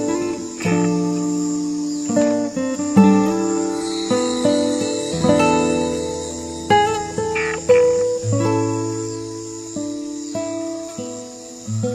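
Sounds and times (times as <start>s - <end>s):
summer night cicadas droning: 0.0s - 11.9s
sustained tonal notes with soft struck attack: 3.2s - 8.0s.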